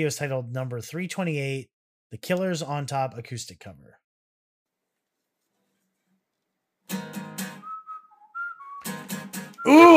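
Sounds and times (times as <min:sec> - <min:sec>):
speech: 0:00.0 - 0:04.0, 0:06.9 - 0:07.2, 0:09.6 - 0:09.9
man whistling a melody: 0:07.4 - 0:09.9.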